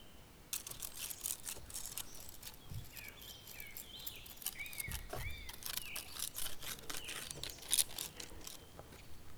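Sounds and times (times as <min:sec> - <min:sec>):
dry twigs rubbing as wooden percussion: 0:00.5 - 0:09.1.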